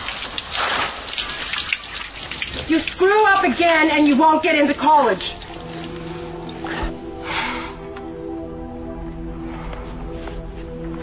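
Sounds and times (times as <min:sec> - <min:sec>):
steady rushing water with broad hiss: 0:00.0 - 0:07.0
speech: 0:02.7 - 0:05.4.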